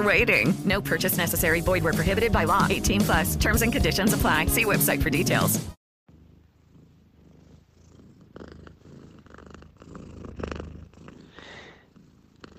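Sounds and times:
speech: 0.0s - 5.8s
cat purring: 6.1s - 12.5s.

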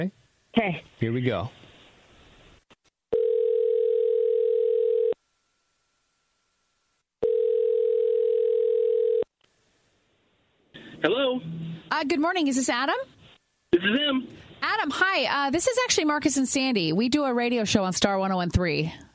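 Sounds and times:
speech: 0.0s - 1.6s, 11.0s - 13.1s, 13.7s - 19.1s
outgoing phone call electronic ringing tone: 3.1s - 5.2s, 7.2s - 9.3s.

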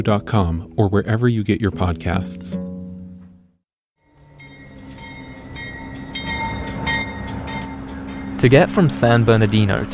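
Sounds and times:
speech: 0.0s - 2.6s, 8.4s - 9.9s
metallic squeals: 4.1s - 9.9s
passenger train rumbling along the rails: 4.2s - 9.9s.

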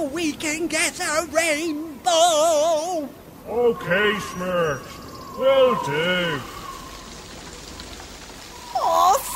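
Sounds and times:
speech: 0.0s - 6.5s
rain falling: 0.0s - 9.3s.

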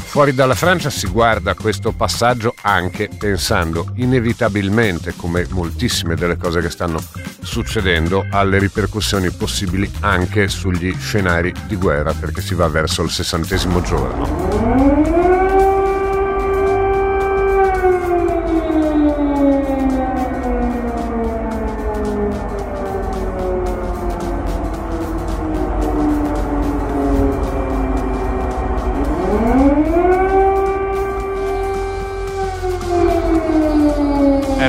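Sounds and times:
speech: 0.1s - 15.3s
air raid siren wailing: 13.0s - 34.6s.

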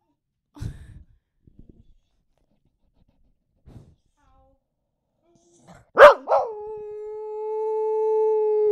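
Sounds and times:
dog yelping: 6.0s - 6.5s
dog howling: 6.0s - 8.7s.

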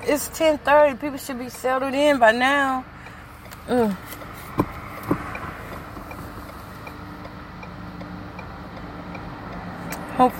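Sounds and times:
speech: 0.0s - 3.0s, 3.7s - 4.2s, 10.2s - 10.3s
car engine and road rumble inside a car in heavy traffic: 0.0s - 10.3s
soft sharp knocks: 4.5s - 6.2s.

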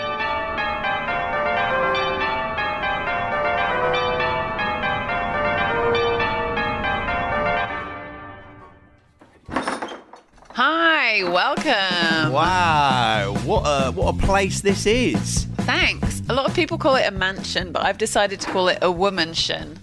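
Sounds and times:
doorbell with long ringing melodic chime: 0.0s - 8.7s
speech: 11.2s - 19.8s.

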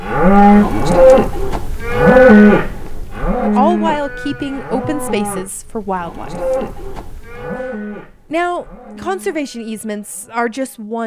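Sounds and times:
cattle mooing: 0.0s - 5.4s, 6.1s - 8.1s
speech: 0.1s - 1.4s, 3.7s - 6.9s, 8.3s - 11.0s.

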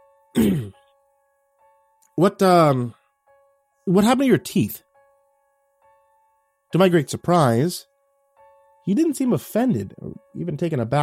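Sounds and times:
speech: 0.4s - 0.7s, 2.2s - 3.0s, 3.9s - 4.8s, 6.7s - 7.9s, 8.8s - 11.0s
person clearing throat: 0.4s - 0.8s.

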